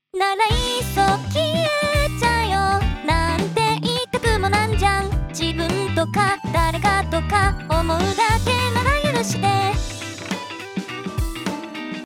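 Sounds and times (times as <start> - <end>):
synthesized singing voice: 0.2 - 9.8.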